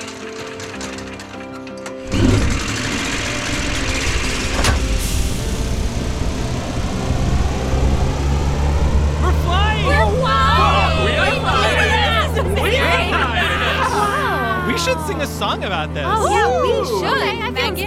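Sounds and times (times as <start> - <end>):
tonal hum: 2.0 - 15.4
electric ship engine running: 2.0 - 16.0
laughter: 9.4 - 17.8.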